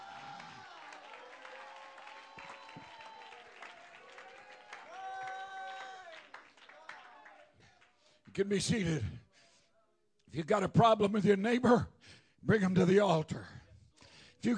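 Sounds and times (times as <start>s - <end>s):
raised voices calling out and cheering: 0.0s - 7.4s
crowd clapping: 0.0s - 8.2s
speech: 8.4s - 9.2s, 10.3s - 13.6s.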